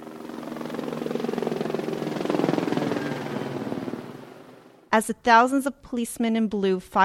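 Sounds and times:
law enforcement helicopters flying overhead at a ceremony at MIT in Boston: 0.0 - 4.9
speech: 5.0 - 7.0.

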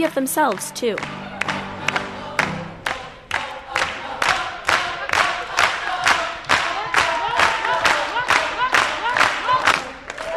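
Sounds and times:
speech: 0.0 - 1.2
large crowd of families and friends clapping in rhythm: 0.0 - 10.3
many voices singing and cheering along with student performers at a gospel song: 0.6 - 10.3.

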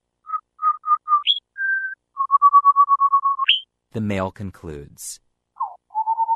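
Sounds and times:
female Rufous-and-white wren singing clear whistled phrases: 0.3 - 3.7, 5.6 - 6.3
speech: 3.9 - 5.2.

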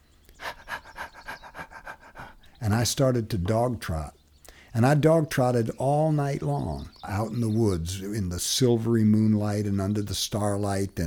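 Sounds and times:
person imitating a panting wolf: 0.4 - 2.6
speech: 2.6 - 11.0.

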